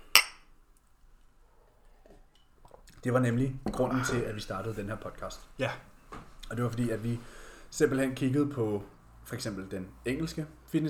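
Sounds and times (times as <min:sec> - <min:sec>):
glasses clinking in a toast: 0:00.0 - 0:00.5
speech: 0:03.0 - 0:05.9, 0:06.5 - 0:10.8.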